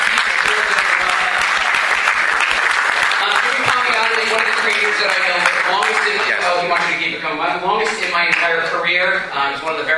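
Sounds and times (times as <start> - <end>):
audience applause at a live panel event: 0.0 - 7.1
speech: 5.0 - 9.9.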